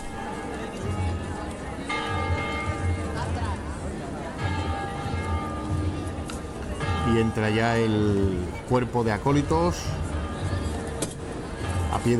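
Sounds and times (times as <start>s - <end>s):
church bells ringing: 0.0s - 9.5s
outdoor crowd murmur and voices: 0.0s - 12.1s
speech: 7.1s - 10.0s.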